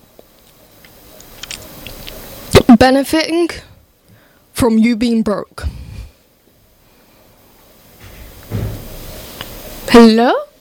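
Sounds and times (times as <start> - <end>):
speech: 2.8 - 3.7, 4.6 - 5.7, 10.0 - 10.5
door closing with dull thud: 8.0 - 9.0.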